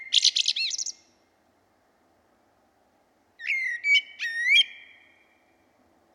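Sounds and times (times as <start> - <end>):
common blackbird Turdus merula singing: 0.0 - 1.1, 3.4 - 5.2.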